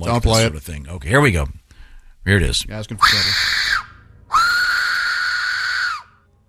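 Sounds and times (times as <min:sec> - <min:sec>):
speech: 0:00.0 - 0:01.6, 0:02.2 - 0:03.6
recreated ancient death whistle blown with a scream-like shriek: 0:02.9 - 0:06.2.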